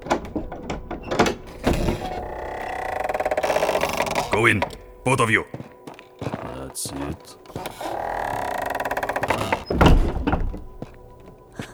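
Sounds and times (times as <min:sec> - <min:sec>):
heavy library door shutting with a loud deep thunk: 0:00.0 - 0:05.0, 0:07.4 - 0:11.7
heavy library door creaking on its hinges: 0:00.0 - 0:11.7
speech: 0:04.4 - 0:05.6, 0:06.8 - 0:07.4.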